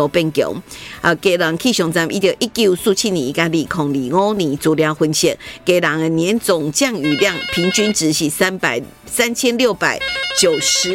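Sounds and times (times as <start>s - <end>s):
speech: 0.0s - 10.9s
telephone ringing with bright electronic tones: 7.1s - 8.0s, 10.0s - 10.9s.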